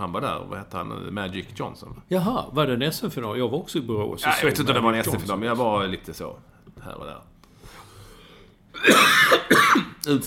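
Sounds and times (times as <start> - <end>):
speech: 0.0 - 7.8, 8.8 - 10.2
person coughing harshly: 8.8 - 10.0.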